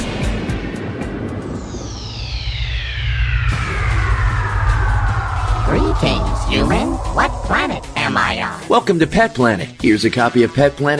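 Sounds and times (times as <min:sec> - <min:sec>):
airplane engine roaring during takeoff: 0:01.2 - 0:09.0
high whining tone sweeping downward in pitch: 0:01.5 - 0:09.0
speech: 0:06.0 - 0:10.9.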